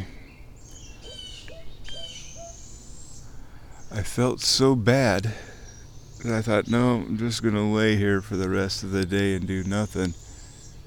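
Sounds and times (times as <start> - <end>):
higher quavering owl whistles: 0.8 - 3.0
several owls hooting outdoors: 0.8 - 3.2
speech: 3.9 - 5.5, 6.2 - 10.2.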